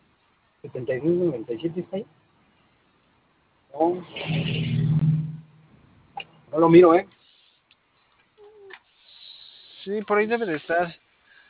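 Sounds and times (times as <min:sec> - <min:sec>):
speech: 0:00.6 - 0:02.2, 0:03.8 - 0:04.8, 0:06.5 - 0:07.2, 0:09.8 - 0:11.0
car engine droning while driving, heard from inside the vehicle: 0:04.1 - 0:05.7.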